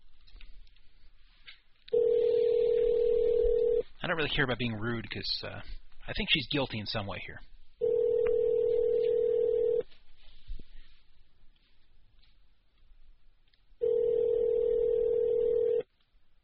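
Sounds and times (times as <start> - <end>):
phone ringback tone through a handset: 1.9 - 3.9, 7.8 - 9.9, 13.8 - 15.9
speech: 4.1 - 7.5.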